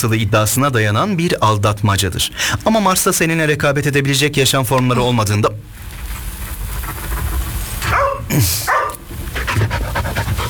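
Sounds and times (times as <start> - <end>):
speech: 0.0 - 5.7, 8.4 - 8.7
steady hum: 0.0 - 10.4
dog barking and yelping: 7.8 - 10.4.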